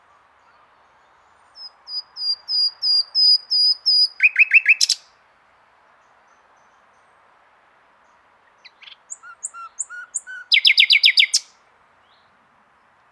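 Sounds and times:
common nightingale Luscinia megarhynchos singing: 0.4 - 5.1, 8.1 - 12.9.

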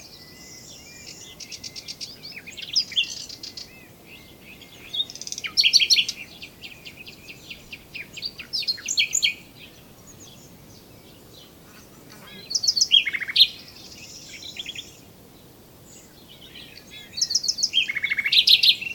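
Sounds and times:
common nightingale Luscinia megarhynchos singing: 0.0 - 18.9.

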